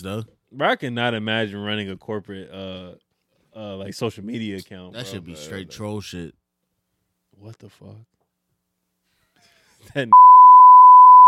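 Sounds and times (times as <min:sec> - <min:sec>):
speech: 0:00.0 - 0:03.0, 0:03.6 - 0:06.4, 0:07.4 - 0:08.1, 0:09.8 - 0:10.3
high-pitched censor bleep tone: 0:10.1 - 0:11.2.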